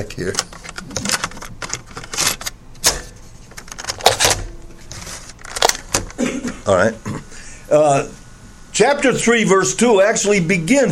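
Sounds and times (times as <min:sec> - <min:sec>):
speech: 0:00.0 - 0:01.0, 0:06.6 - 0:08.2, 0:08.8 - 0:10.9
plastic cassette tape being turned over in a recorder: 0:00.0 - 0:06.2.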